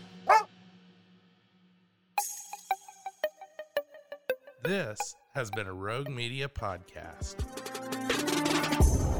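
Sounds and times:
dog yelping: 0:00.3 - 0:00.5
speech: 0:04.6 - 0:09.1.

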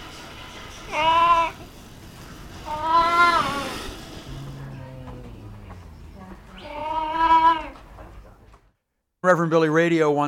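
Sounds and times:
mainland clouded leopard giving plaintive mews: 0:02.7 - 0:07.8
speech: 0:09.3 - 0:10.2.

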